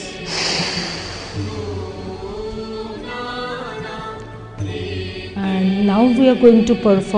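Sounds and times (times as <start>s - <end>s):
deep breath in and out during a guided breathing exercise: 0.0s - 2.6s
steady soft music: 0.0s - 7.1s
speech: 5.9s - 7.1s.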